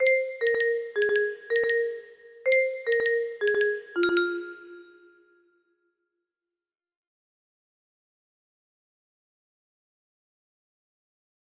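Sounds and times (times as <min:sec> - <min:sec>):
music box background melody: 0:00.0 - 0:05.3.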